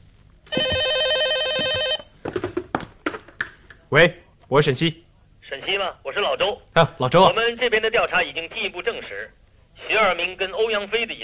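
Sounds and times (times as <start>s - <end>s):
telephone bell ringing: 0.5s - 2.1s
speech: 3.9s - 11.2s.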